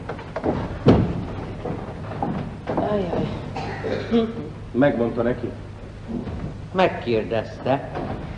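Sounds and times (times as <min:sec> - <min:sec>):
door thud as it swings open: 0:00.4 - 0:01.4
speech: 0:02.9 - 0:03.4, 0:04.1 - 0:08.1.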